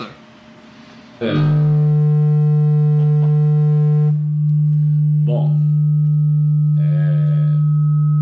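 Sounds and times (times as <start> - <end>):
speech: 1.2 - 1.8
audio feedback squeal: 1.2 - 8.2.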